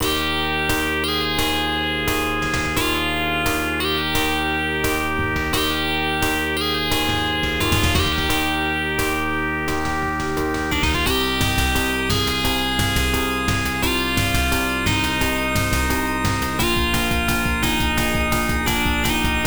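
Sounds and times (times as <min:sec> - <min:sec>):
Sharp X1 computer chiptune music: 0:00.0 - 0:19.4.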